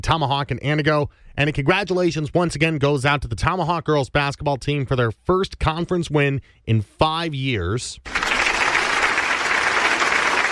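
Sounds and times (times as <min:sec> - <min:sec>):
speech: 0:00.0 - 0:08.2
audience applause: 0:08.1 - 0:10.4.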